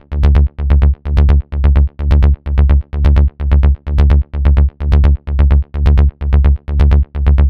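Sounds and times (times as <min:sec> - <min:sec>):
melodic techno bass loop in D at 128: 0:00.0 - 0:07.4.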